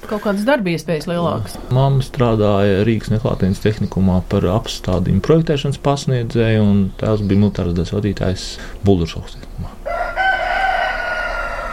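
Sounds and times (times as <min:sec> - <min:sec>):
speech: 0:00.0 - 0:09.8
rooster crowing: 0:09.8 - 0:11.7.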